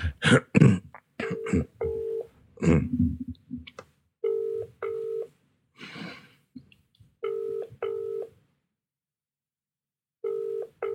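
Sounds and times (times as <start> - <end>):
throat clearing: 0.0 - 1.8, 2.6 - 3.1
person coughing: 0.0 - 1.9, 2.6 - 3.1
outgoing WhatsApp phone call ringing tone: 1.4 - 2.3, 4.2 - 5.3, 7.2 - 8.3, 10.2 - 10.9.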